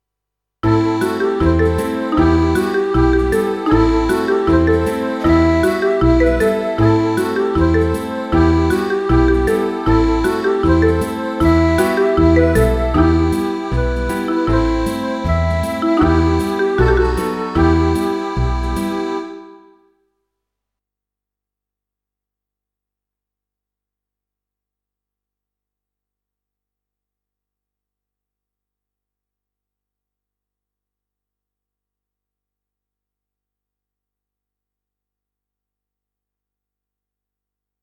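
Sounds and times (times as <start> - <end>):
folk riff in E minor: 0.6 - 19.8.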